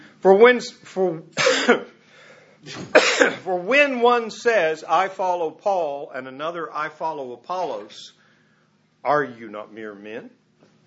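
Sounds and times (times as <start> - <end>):
speech: 0.2 - 2.0, 2.6 - 8.2, 9.0 - 10.4
persistent cough from a lingering illness: 1.4 - 2.0, 2.6 - 3.5.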